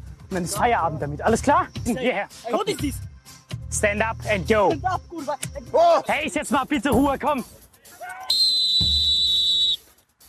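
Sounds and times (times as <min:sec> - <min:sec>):
speech: 0:00.3 - 0:03.1, 0:03.7 - 0:08.4
shrill referee whistle blast: 0:08.2 - 0:09.9.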